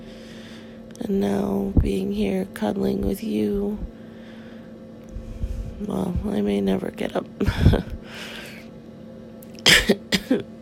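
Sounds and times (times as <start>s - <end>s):
low hum: 0.0s - 10.6s
speech: 1.0s - 4.0s, 5.8s - 7.9s, 10.3s - 10.6s
sharp raspy coughs: 9.6s - 10.5s.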